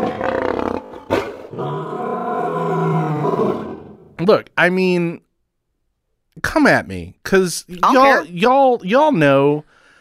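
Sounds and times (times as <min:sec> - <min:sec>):
lion roaring and growling: 0:00.0 - 0:04.2
speech: 0:04.2 - 0:05.2, 0:06.4 - 0:09.7.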